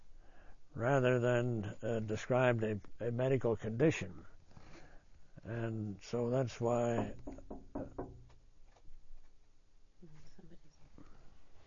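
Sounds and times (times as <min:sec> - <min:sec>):
speech: 0:00.8 - 0:04.3, 0:05.4 - 0:08.2
firm knocking on a door: 0:06.9 - 0:08.4.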